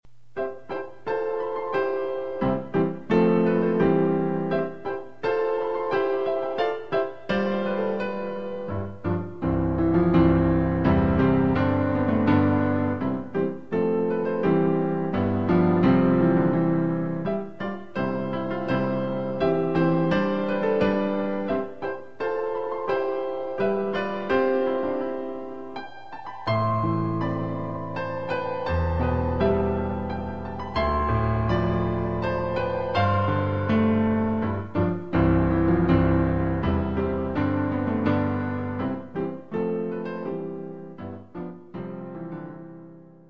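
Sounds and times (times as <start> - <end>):
piano playing a hymn: 0.2 - 43.2.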